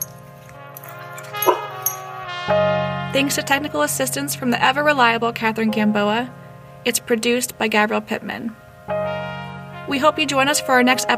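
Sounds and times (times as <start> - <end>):
dog barking in a recording studio: 1.0 - 2.1
dog yipping: 1.2 - 2.1
speech: 2.5 - 8.6, 9.9 - 11.1.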